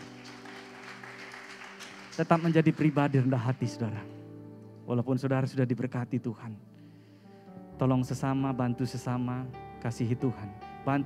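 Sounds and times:
audience applauding: 0.0s - 3.8s
speech: 2.2s - 4.2s, 4.9s - 6.7s, 7.8s - 11.0s.

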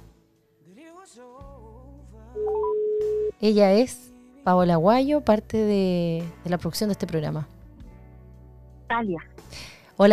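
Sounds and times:
speech: 1.1s - 2.8s, 3.4s - 7.5s, 8.9s - 10.1s
melodic electronic telephone dialing beeps: 2.4s - 3.3s
loud steady phone tone: 2.4s - 3.4s.

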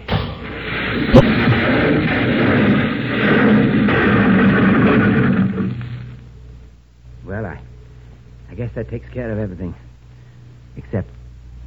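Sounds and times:
explosion blasting a cable: 0.0s - 6.3s
speech: 1.2s - 1.5s, 8.8s - 9.9s, 10.8s - 11.2s.

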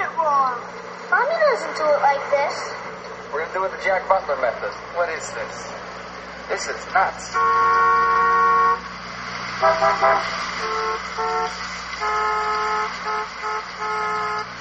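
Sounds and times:
steady traffic rumble: 0.0s - 14.6s
speech: 1.6s - 5.9s, 6.5s - 8.9s, 9.6s - 14.5s
car horns honking: 7.2s - 14.6s.

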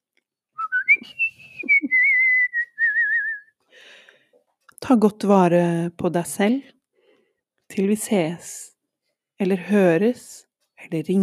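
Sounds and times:
person whistling a short melody with warbling vibrato: 0.6s - 3.5s
speech: 4.9s - 6.8s, 7.8s - 8.6s, 9.4s - 11.2s.

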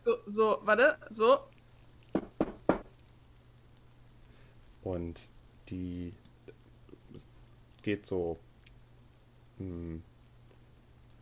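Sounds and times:
speech: 0.3s - 1.5s, 4.8s - 6.2s, 7.8s - 8.5s, 9.6s - 10.1s
knocking on a wooden door: 2.2s - 2.9s.

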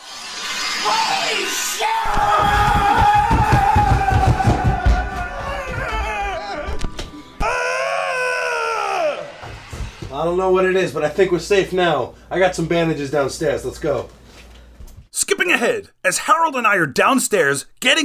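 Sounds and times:
speech: 0.8s - 2.7s, 10.2s - 14.2s, 15.2s - 18.0s
high wailing cries: 1.8s - 9.5s
several men yelling and screaming: 1.8s - 9.5s, 15.2s - 18.0s.

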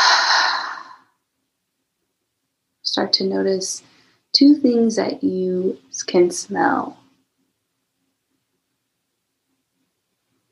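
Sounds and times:
deep exhale through the mouth: 0.0s - 1.0s
speech: 2.9s - 7.0s.

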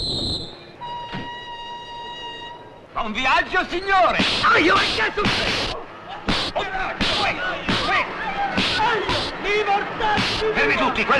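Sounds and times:
crowd shouting and chattering at a train station in Florence: 0.7s - 11.1s
speech: 3.0s - 5.8s, 8.8s - 11.1s
sharp slaps to people's faces: 4.2s - 8.0s, 8.6s - 9.4s, 10.2s - 10.5s.

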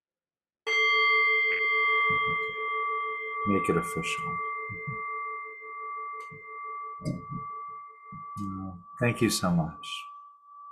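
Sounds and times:
meditation bell struck and ringing: 0.7s - 10.7s
soft low thumps: 2.0s - 2.5s, 4.2s - 5.2s, 6.3s - 9.2s
speech: 3.4s - 4.5s, 9.0s - 10.1s.

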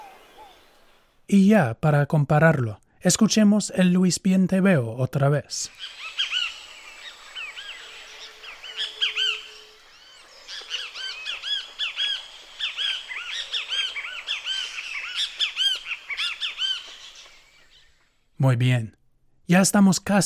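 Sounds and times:
great kiskadee calls: 0.0s - 1.1s, 5.6s - 18.3s
speech: 1.3s - 6.0s, 18.4s - 20.2s.

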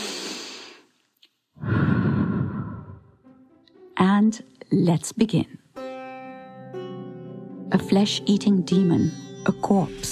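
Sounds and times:
deep breath with a long whooshing exhale: 0.0s - 1.0s, 1.6s - 3.2s
speech: 4.2s - 5.6s, 7.7s - 10.1s.

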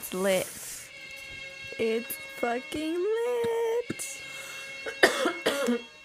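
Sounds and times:
speech: 0.1s - 0.6s, 1.8s - 4.2s
sharp harsh coughs: 4.8s - 6.0s.

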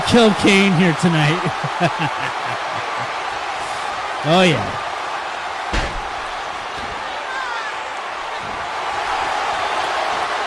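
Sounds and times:
wrestling match crowd noise: 0.0s - 10.4s
speech: 0.1s - 2.4s, 4.2s - 4.9s
laughter: 0.2s - 3.6s
wrestler crashing onto the mat in a fallaway slam: 5.7s - 7.0s.

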